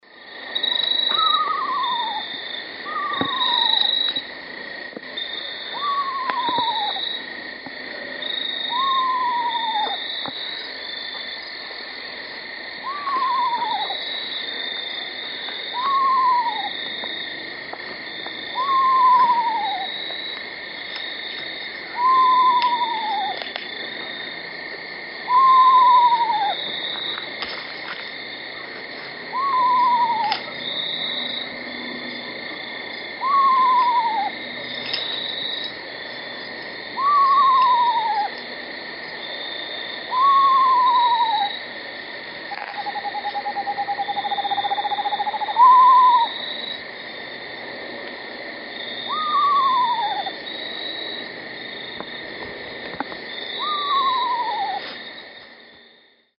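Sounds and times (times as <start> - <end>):
eastern screech owl tremolo whinny: 1.1 - 3.8, 5.7 - 7.0, 8.7 - 10.0, 12.8 - 14.1, 15.7 - 16.8, 18.5 - 20.0, 21.9 - 23.4, 25.3 - 26.7, 29.3 - 30.4, 33.2 - 34.4, 37.0 - 38.4, 40.1 - 41.6, 42.8 - 46.8, 49.0 - 50.9, 53.6 - 54.9.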